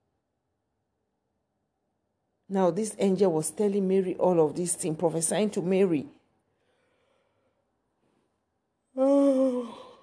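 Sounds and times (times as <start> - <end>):
speech: 2.5 - 6.2
person yawning: 9.0 - 10.0.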